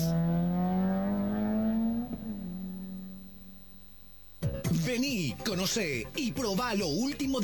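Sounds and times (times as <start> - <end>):
rally car engine revving at a rally in Paraguay: 0.0 - 3.6
speech: 4.9 - 7.4.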